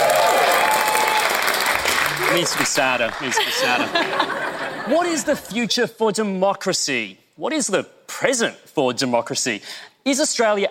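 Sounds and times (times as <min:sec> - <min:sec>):
audience giving half-hearted applause: 0:00.0 - 0:04.6
speech: 0:02.3 - 0:10.7
laughter: 0:03.1 - 0:05.5.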